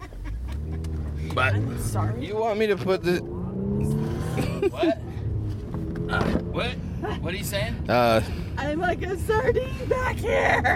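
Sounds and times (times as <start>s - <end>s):
small red car engine revving: 0.0s - 7.0s
speech: 1.4s - 4.0s, 4.6s - 5.1s, 6.1s - 10.7s.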